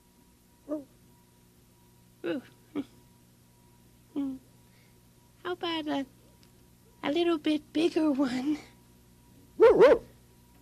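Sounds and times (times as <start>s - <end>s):
speech: 2.3s - 3.0s, 5.6s - 6.2s, 7.0s - 8.7s, 9.6s - 10.1s
dog giving small soft barks on request: 9.6s - 10.2s.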